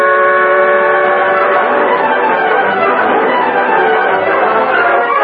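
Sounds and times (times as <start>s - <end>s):
fast-moving train roaring along the tracks: 0.0s - 5.1s.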